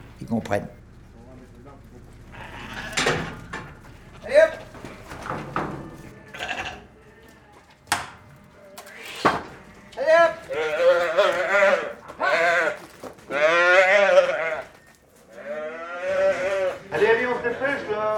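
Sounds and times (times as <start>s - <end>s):
speech: 0.2s - 0.8s
sheep and lambs bleating: 2.2s - 5.2s, 5.8s - 7.6s, 8.5s - 18.0s.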